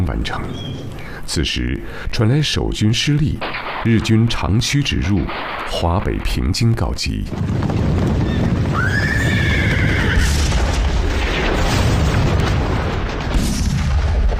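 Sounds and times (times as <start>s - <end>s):
speech: 0.1s - 8.2s
distant artillery cannon fire rumbling: 3.4s - 14.3s
horse whinnying: 8.2s - 10.4s.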